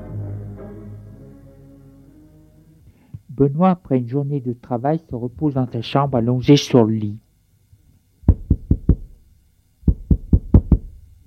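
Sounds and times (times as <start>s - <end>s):
speech: 3.4s - 7.2s
knocking on a door: 8.3s - 9.1s, 9.9s - 11.0s.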